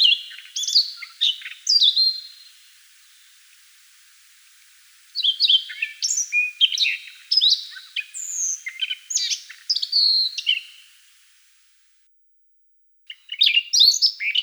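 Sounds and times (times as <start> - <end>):
Siberian rubythroat song: 0.0 - 11.5.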